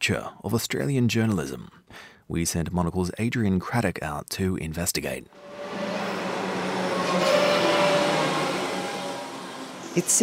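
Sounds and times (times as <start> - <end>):
speech: 0.0 - 5.9, 10.0 - 10.2
faint metallic whine: 5.4 - 10.2
train passing on the tracks at a train station in suburban Melbourne: 5.4 - 10.2.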